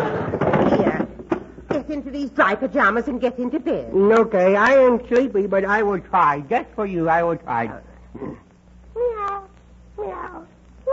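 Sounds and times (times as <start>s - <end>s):
low steady hum: 0.0s - 10.9s
speech: 1.9s - 8.4s
person imitating cat meow: 9.0s - 10.9s.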